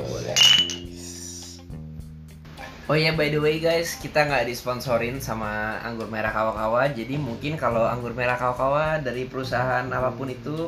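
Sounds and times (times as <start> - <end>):
glasses clinking in a toast: 0.2 - 1.0
speech: 2.9 - 10.6.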